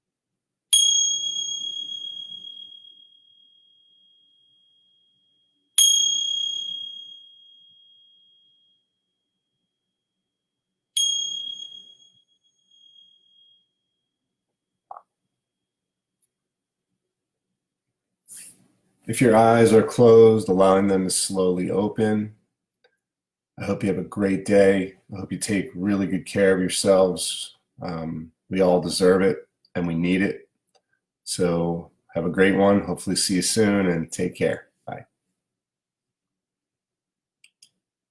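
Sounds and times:
meditation bell ringing: 0:00.7 - 0:09.2, 0:11.0 - 0:14.0
speech: 0:19.1 - 0:22.4, 0:23.6 - 0:30.4, 0:31.3 - 0:35.1.

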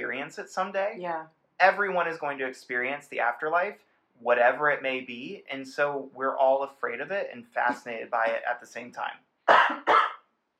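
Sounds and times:
speech: 0:00.3 - 0:09.9
person coughing: 0:09.5 - 0:10.2.

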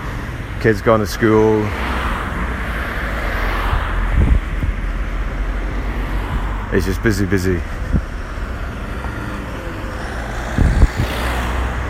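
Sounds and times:
road traffic roar from many cars on a street: 0:00.0 - 0:11.8
speech: 0:00.6 - 0:02.0, 0:06.7 - 0:08.1
vehicle passing: 0:01.4 - 0:11.8.

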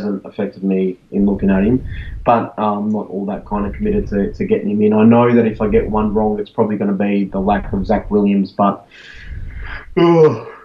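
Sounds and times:
speech: 0:00.0 - 0:10.5
person yawning: 0:09.2 - 0:10.6.

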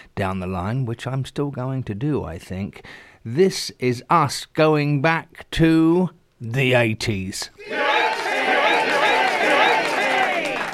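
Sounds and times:
speech: 0:00.2 - 0:08.1
live audience cheering and calling out: 0:07.6 - 0:10.7.

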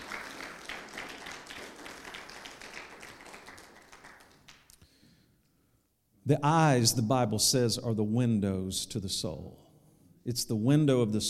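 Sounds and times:
crowd applauding in praise of God: 0:00.0 - 0:04.8
speech: 0:06.3 - 0:09.6, 0:10.3 - 0:11.2.

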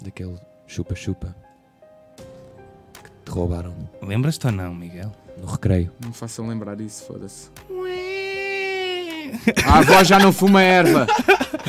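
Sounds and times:
speech: 0:00.0 - 0:01.5, 0:03.3 - 0:08.0, 0:09.3 - 0:11.6
person imitating a crying baby: 0:07.7 - 0:09.5
laughter: 0:09.2 - 0:11.6.

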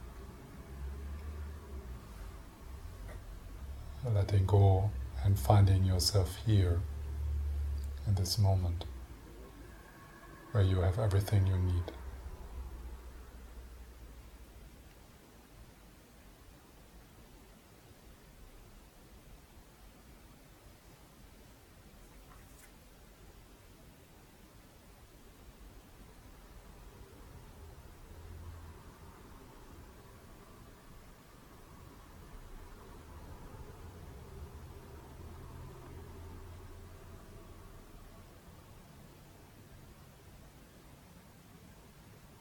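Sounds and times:
cars passing with a low rumble: 0:00.0 - 0:05.2, 0:06.6 - 0:07.9, 0:08.9 - 0:13.7, 0:31.9 - 0:38.1
faint steady wash of distant traffic: 0:00.0 - 0:14.8, 0:26.3 - 0:42.4
speech: 0:04.0 - 0:06.9, 0:08.1 - 0:08.9, 0:10.5 - 0:12.0.

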